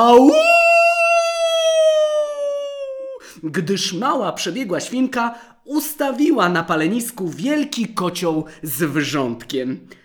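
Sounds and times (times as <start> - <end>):
speech: 0.0 - 0.5, 3.4 - 10.0
wolf howling in pain: 0.0 - 3.2.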